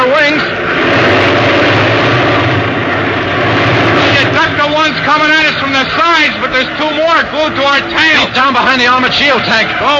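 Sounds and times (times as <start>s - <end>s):
fighter plane engine at full throttle in a dive: 0.0s - 9.9s
speech: 8.8s - 9.9s.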